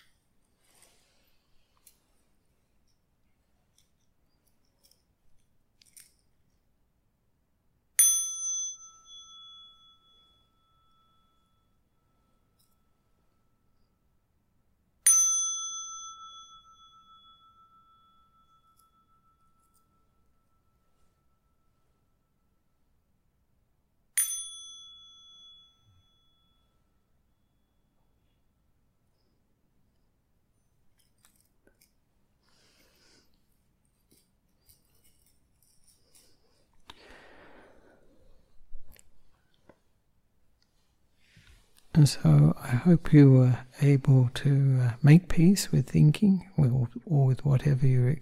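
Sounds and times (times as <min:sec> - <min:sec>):
meditation bell struck with clear metallic ring: 0:08.0 - 0:14.3, 0:15.0 - 0:23.0, 0:24.2 - 0:28.0
speech: 0:42.0 - 0:48.2.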